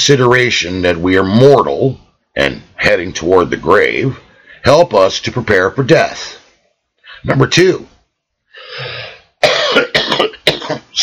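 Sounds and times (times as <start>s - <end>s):
speech: 0.0s - 6.4s, 7.2s - 7.9s, 10.2s - 11.0s
loud harsh coughs: 9.4s - 11.0s
person clearing throat: 9.4s - 11.0s.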